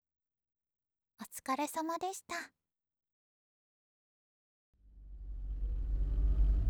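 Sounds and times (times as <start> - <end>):
speech: 1.2 - 2.6
bus engine arriving and pulling up: 5.1 - 6.6.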